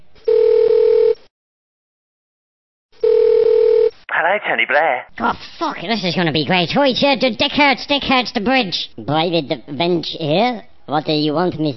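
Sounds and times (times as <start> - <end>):
telephone ringing tone on a call line: 0.3 - 1.2, 3.0 - 3.9
speech: 4.2 - 11.7.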